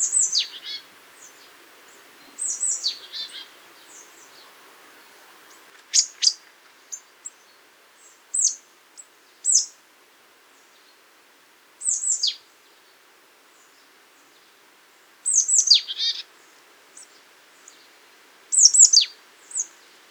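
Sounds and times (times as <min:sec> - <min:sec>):
marsh tit Poecile palustris calling: 0:00.0 - 0:05.7
background hiss: 0:00.0 - 0:20.0.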